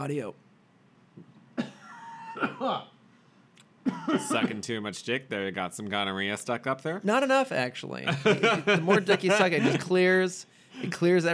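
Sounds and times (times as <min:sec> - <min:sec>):
speech: 0:00.0 - 0:00.5, 0:02.4 - 0:02.9, 0:03.8 - 0:11.3
person coughing: 0:01.6 - 0:02.9, 0:03.8 - 0:04.6, 0:09.6 - 0:09.8
laughter: 0:08.1 - 0:10.0.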